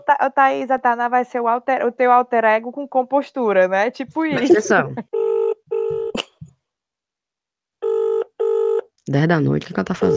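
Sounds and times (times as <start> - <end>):
speech: 0.1 - 5.2, 9.1 - 10.1
telephone ringing late at night: 4.4 - 6.2, 7.8 - 8.9, 9.7 - 10.1.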